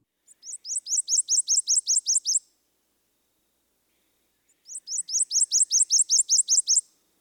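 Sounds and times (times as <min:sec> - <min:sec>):
prothonotary warbler singing: 0:00.3 - 0:02.4, 0:04.5 - 0:06.8.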